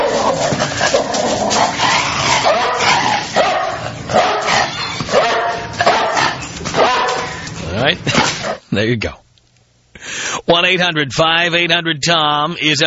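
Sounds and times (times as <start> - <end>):
dog barking, yipping and snarling in a mauling: 0.0 - 8.7
speech: 8.8 - 9.2, 10.0 - 12.8.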